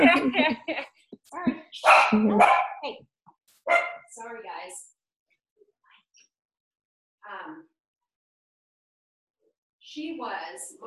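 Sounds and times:
laughter: 0:00.0 - 0:01.0
dog barking and yipping: 0:01.8 - 0:02.9, 0:03.6 - 0:04.1
speech: 0:02.1 - 0:02.6.

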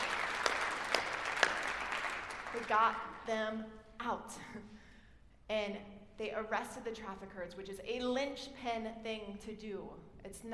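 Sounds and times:
audience applause: 0:00.0 - 0:02.8
speech: 0:02.7 - 0:04.8, 0:05.5 - 0:10.5.

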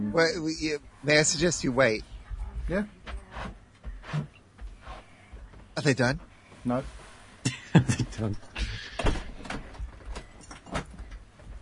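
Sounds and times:
speech: 0:00.1 - 0:02.1, 0:02.7 - 0:04.3, 0:05.8 - 0:08.5
laughter: 0:07.5 - 0:09.0
front door opening and closing: 0:08.8 - 0:11.2.

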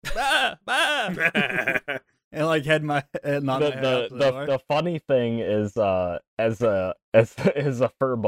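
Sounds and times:
laughter: 0:00.0 - 0:02.0, 0:03.5 - 0:04.6
person imitating goat bleats: 0:00.1 - 0:01.3
speech: 0:00.1 - 0:08.2.

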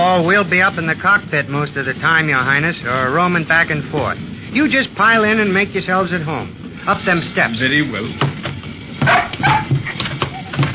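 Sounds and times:
speech: 0:00.2 - 0:08.3, 0:09.0 - 0:10.0
dog yelping and whimpering at a small plane's door: 0:09.0 - 0:10.6.

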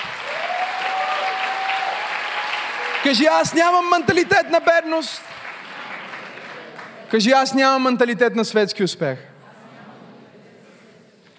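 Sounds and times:
crowd applauding: 0:00.0 - 0:07.6
speech: 0:03.0 - 0:05.4, 0:07.1 - 0:09.3.

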